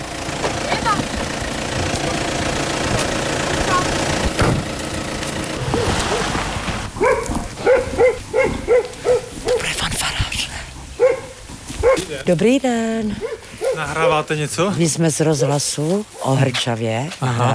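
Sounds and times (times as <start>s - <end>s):
German car engine idling in a village centre: 0.0s - 14.4s
short barks: 5.6s - 9.8s, 11.0s - 12.2s, 13.2s - 14.0s
speech: 12.3s - 17.5s.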